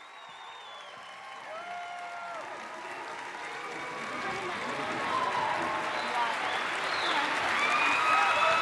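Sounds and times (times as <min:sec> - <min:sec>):
faint whistles from the audience: 0:00.0 - 0:01.3
cheers from the audience: 0:00.0 - 0:08.6
large audience applause: 0:00.0 - 0:08.6.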